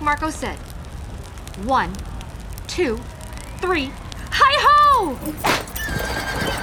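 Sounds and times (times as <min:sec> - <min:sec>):
speech: 0:00.0 - 0:00.7, 0:01.6 - 0:02.1, 0:02.7 - 0:06.6
faint rhythmic hoofbeats of a galloping horse: 0:05.4 - 0:06.6
horse neighing: 0:05.7 - 0:06.6.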